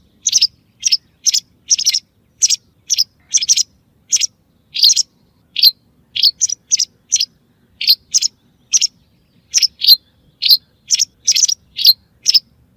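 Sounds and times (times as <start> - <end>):
white wagtail singing a twittering series of sharp high chirps: 0.1 - 12.5.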